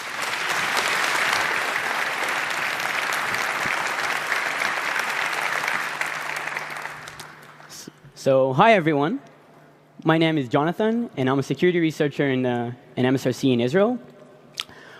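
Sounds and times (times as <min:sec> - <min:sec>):
large audience applauding: 0:00.0 - 0:07.8
speech: 0:08.2 - 0:09.3, 0:10.0 - 0:14.1.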